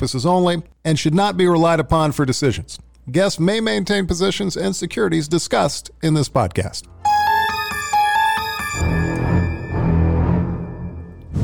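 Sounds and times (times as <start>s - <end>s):
speech: 0.0s - 7.2s
brief musical chime: 7.0s - 11.3s.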